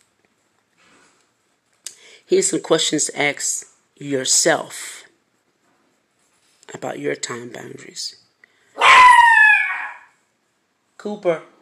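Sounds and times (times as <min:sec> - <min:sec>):
speech: 0:02.3 - 0:05.0, 0:06.8 - 0:08.2, 0:11.0 - 0:11.6
dog barking: 0:08.8 - 0:10.1.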